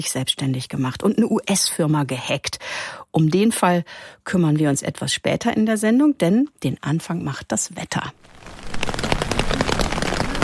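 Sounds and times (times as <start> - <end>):
speech: 0.0 - 9.8
steady rain falling on a surface: 8.2 - 10.4.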